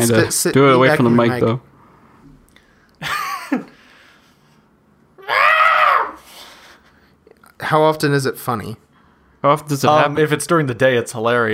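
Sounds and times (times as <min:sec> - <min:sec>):
speech: 0:00.0 - 0:01.7, 0:07.7 - 0:11.5
person imitating a cat's screaming yowl: 0:05.2 - 0:06.2.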